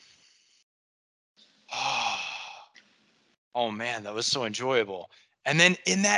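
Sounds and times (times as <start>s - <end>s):
person taking a slow deliberate breath: 1.7s - 2.8s
speech: 3.6s - 6.1s.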